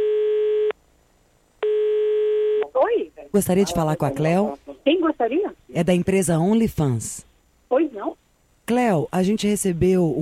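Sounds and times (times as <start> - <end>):
ringback tone of an outgoing telephone call: 0.0 - 0.7, 1.6 - 2.6
speech: 3.3 - 7.9, 8.7 - 10.2.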